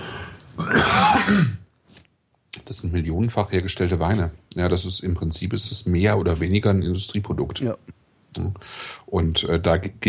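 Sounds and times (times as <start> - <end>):
adult coughing or clearing throat: 0.6 - 1.6
speech: 2.8 - 10.0.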